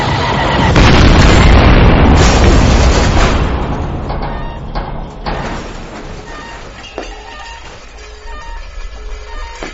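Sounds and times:
heavy sci-fi weapon blast fired at a spacecraft: 0.0s - 5.9s
roaring explosion with crackling bursts: 0.0s - 6.0s.

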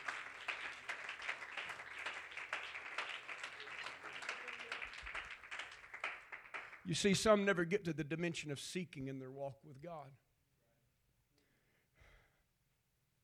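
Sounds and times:
congregation clapping hands during a church service: 0.0s - 8.5s
speech: 6.9s - 10.2s.

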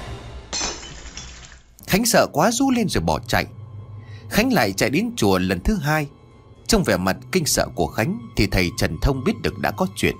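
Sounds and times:
vase and incense bowl falling and shattering on brick floor: 0.5s - 1.9s
speech: 1.9s - 3.6s, 4.3s - 10.1s.

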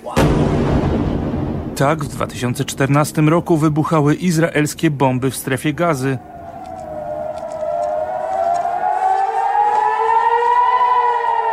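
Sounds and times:
air raid warning sirens wailing over cities under rocket fire: 0.2s - 11.5s
speech: 1.8s - 6.3s.

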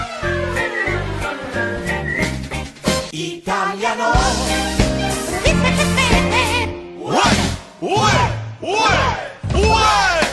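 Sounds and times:
rhythmic backing music with a steady thumping beat: 0.0s - 3.2s, 4.1s - 8.3s, 9.4s - 10.3s
person whistling a bright tune: 0.6s - 2.5s.

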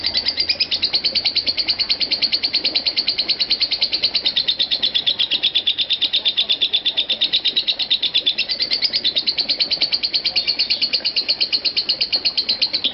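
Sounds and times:
lovebird chattering: 0.0s - 12.9s.

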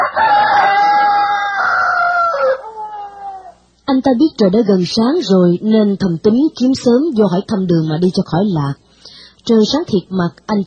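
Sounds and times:
rooster crowing at dawn: 0.0s - 3.7s
speech: 4.0s - 8.8s, 9.5s - 10.6s.

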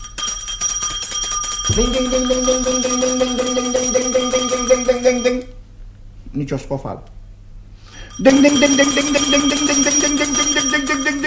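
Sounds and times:
small hand bell ringing in a radio play: 0.0s - 5.5s, 7.9s - 11.2s
low sustained tone: 1.7s - 5.6s, 8.2s - 11.2s
speech: 1.7s - 5.6s, 6.4s - 7.2s, 8.2s - 11.1s.

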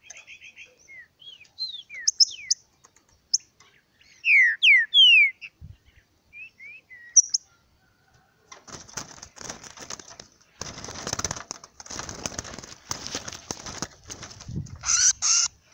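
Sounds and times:
wild green-winged saltator singing in the forest: 0.0s - 2.6s, 3.3s - 7.5s
faint chirps of another free-living bird: 0.0s - 8.4s.

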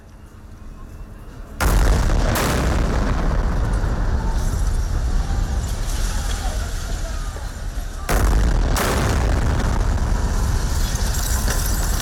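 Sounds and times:
bomb explosions during airstrikes on Gaza City: 1.6s - 12.0s.

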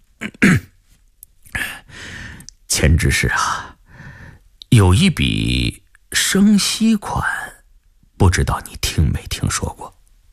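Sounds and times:
storyteller performing an official's throat clearing: 0.2s - 0.8s
speech: 2.8s - 3.7s, 4.8s - 7.4s, 8.2s - 10.0s.

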